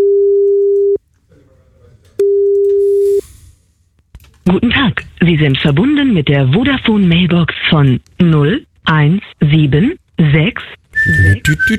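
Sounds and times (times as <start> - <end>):
telephone line tone while calling someone: 0.0 - 1.0, 2.2 - 3.1
speech: 4.5 - 11.7.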